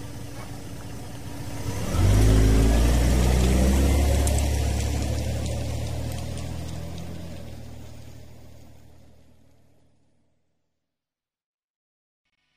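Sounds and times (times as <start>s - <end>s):
car engine starting and revving sound effect: 0.0s - 9.8s.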